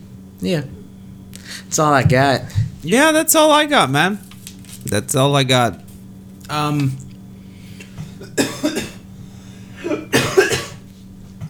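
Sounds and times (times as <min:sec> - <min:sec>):
faint steady electrical hum: 0:00.0 - 0:11.4
speech: 0:00.4 - 0:00.8, 0:01.4 - 0:05.8, 0:06.5 - 0:07.0
person coughing: 0:07.8 - 0:09.0, 0:09.8 - 0:10.9.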